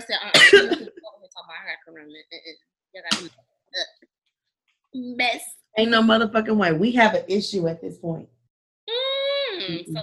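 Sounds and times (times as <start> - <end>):
person coughing harshly: 0.3 - 1.0
speech: 1.5 - 3.5, 5.0 - 8.3.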